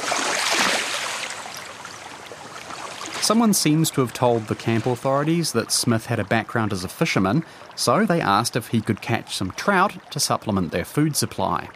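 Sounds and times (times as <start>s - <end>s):
river water rushing and gurgling: 0.0s - 5.4s
speech: 3.3s - 11.7s.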